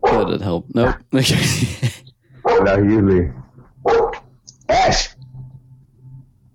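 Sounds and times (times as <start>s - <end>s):
speech: 0.3s - 2.0s, 2.6s - 3.4s, 4.9s - 5.1s
dog barking at someone walking past the yard: 2.4s - 2.8s, 3.8s - 5.1s.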